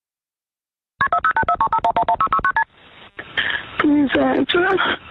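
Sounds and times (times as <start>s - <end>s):
touch-tone keypad dialing beeps of an emergency call: 1.0s - 2.6s
speech: 3.9s - 5.0s.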